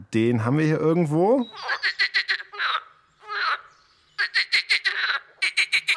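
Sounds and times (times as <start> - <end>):
speech: 0.1 - 2.0
water frogs croaking in a pond: 1.4 - 5.9.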